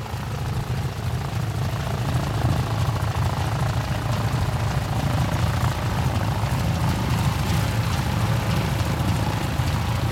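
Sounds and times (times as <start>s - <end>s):
Stearman propeller biplane flying past: 0.0s - 10.1s.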